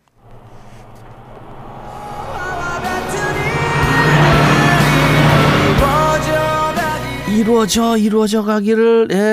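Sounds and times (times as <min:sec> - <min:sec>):
car in the next lane speeding past: 0:00.0 - 0:08.0
road noise: 0:00.0 - 0:08.3
music playing from a passing car: 0:02.2 - 0:07.9
speech: 0:07.7 - 0:09.3.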